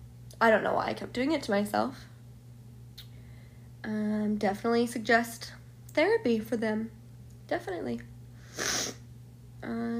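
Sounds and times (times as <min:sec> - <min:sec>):
speech: 0:00.4 - 0:02.1, 0:03.8 - 0:09.0, 0:09.6 - 0:09.9
wet nasal sniffle: 0:08.4 - 0:09.0.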